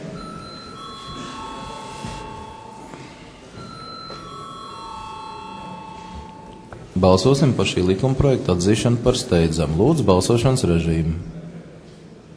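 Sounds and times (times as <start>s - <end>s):
faint murmur: 0.0s - 12.3s
electric bell ringing to call a vote in a parliamentary session: 0.2s - 7.0s
speech: 7.0s - 11.4s.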